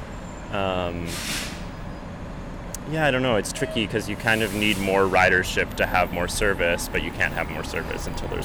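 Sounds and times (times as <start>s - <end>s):
steady traffic background: 0.0s - 8.4s
bus brakes squealing at a bus stop: 0.2s - 2.2s, 3.5s - 5.4s
speech: 0.5s - 1.5s, 2.9s - 8.4s
bus air brakes hissing: 1.0s - 1.8s, 4.2s - 5.2s.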